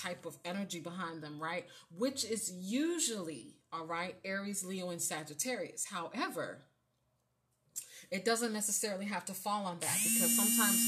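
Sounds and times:
speech: 0.0 - 6.7, 8.0 - 10.8
alarm with loud steady buzzing tone: 9.9 - 10.8.

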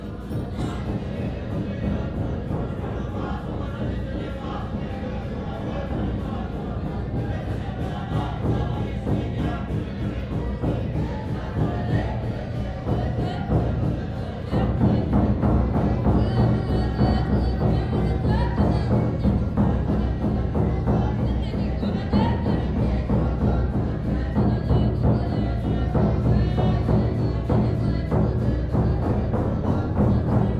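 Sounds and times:
rhythmic beats: 0.0 - 30.5
young monks chanting prayers together at a hilltop monastery: 0.0 - 30.5.

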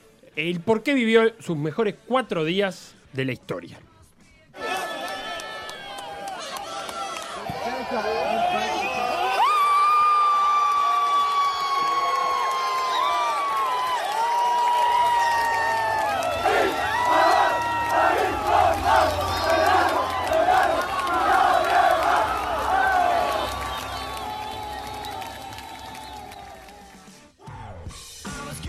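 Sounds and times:
speech: 0.4 - 3.9, 7.9 - 8.2
shouts and whoops from a stadium crowd: 4.6 - 26.9
large stadium crowd cheering after a football goal: 4.6 - 27.8.

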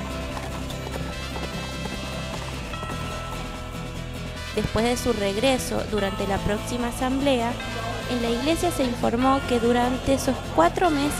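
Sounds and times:
horse hooves clip-clopping: 0.0 - 5.8
dense continuous backdrop of sound: 0.0 - 11.1
speech: 4.6 - 11.1.

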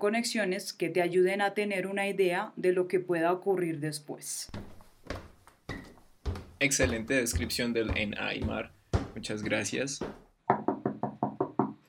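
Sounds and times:
speech: 0.0 - 4.7, 6.6 - 10.2
firm knocking on a door: 5.7 - 11.8.

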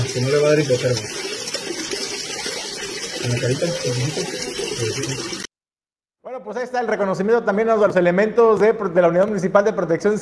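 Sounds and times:
water pouring in a steady stream: 0.0 - 5.5
speech: 0.2 - 1.3, 3.2 - 5.5, 6.3 - 10.2.

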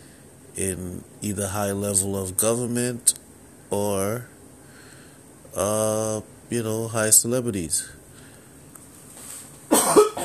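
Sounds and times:
speech: 0.6 - 4.3, 5.5 - 8.0
person clearing throat: 9.7 - 10.2
person coughing: 9.7 - 10.2.

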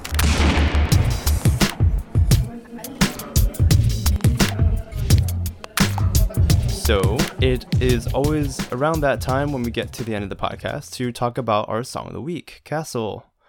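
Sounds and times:
fireworks exploding in sharp bangs and crackles: 0.1 - 2.1
faint crowd noise: 1.8 - 9.6
speech: 6.9 - 13.3.

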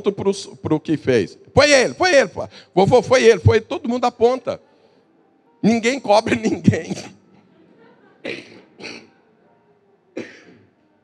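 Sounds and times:
speech: 0.0 - 4.7, 5.6 - 7.2, 8.2 - 9.0
faint murmur: 2.8 - 11.0
person coughing: 6.2 - 7.2, 8.2 - 9.1, 10.2 - 10.7
laughter: 6.2 - 8.2.

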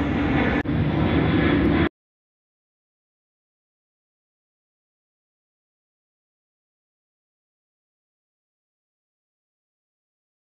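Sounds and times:
passenger jet airliner roaring overhead: 0.0 - 1.9.

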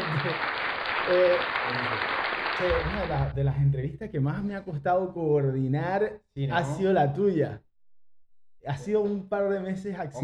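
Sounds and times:
applause from an audience: 0.0 - 3.4
speech: 0.2 - 0.5, 1.1 - 7.7, 8.6 - 10.2.

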